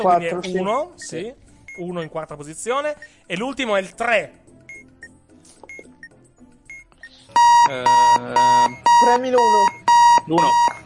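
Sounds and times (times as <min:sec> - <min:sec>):
speech: 0:00.0 - 0:04.4, 0:07.4 - 0:10.8
electronic alarm clock ringing: 0:07.4 - 0:10.8.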